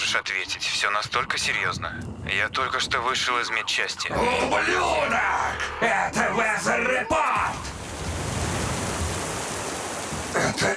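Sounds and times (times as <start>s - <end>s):
speech: 0.1s - 7.6s, 10.6s - 10.7s
rain pouring on a hard surface: 7.5s - 10.7s.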